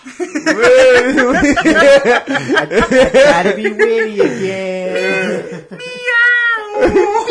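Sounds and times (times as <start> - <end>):
laughter: 0.0 - 6.0, 6.7 - 7.2
speech: 0.0 - 7.2
person imitating a cat meowing: 6.0 - 7.2.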